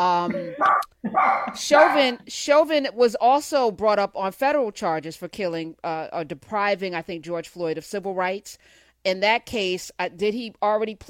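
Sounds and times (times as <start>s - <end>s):
speech: 0.0s - 11.0s
dog yelping: 0.6s - 2.1s.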